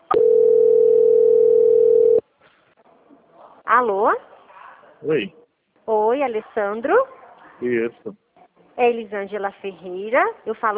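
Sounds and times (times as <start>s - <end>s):
single-pitched telephone dial tone during a call transfer: 0.1s - 2.2s
speech: 3.8s - 4.3s, 5.0s - 8.2s, 8.8s - 10.7s.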